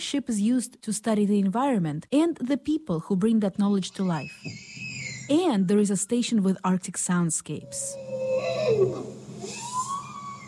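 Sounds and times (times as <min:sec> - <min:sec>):
speech: 0:00.0 - 0:04.7, 0:05.3 - 0:09.6
bowhead whale calling underwater recorded by hydrophone: 0:07.6 - 0:10.4.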